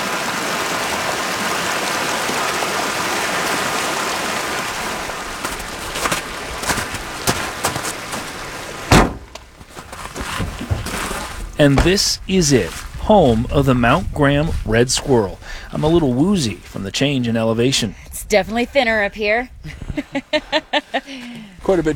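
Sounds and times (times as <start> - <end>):
snowmelt stream cascading down a mountain: 0.0 - 17.8
sharp knocks: 8.8 - 12.2
loud thump: 8.9 - 12.3
speech: 11.6 - 21.9
laughter: 19.6 - 21.6.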